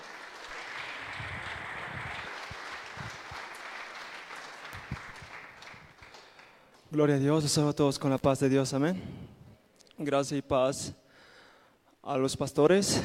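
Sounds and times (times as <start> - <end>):
audience applause welcoming a speaker at a church school gathering: 0.0 - 6.7
speech: 6.9 - 9.3, 10.0 - 11.0, 12.0 - 13.0.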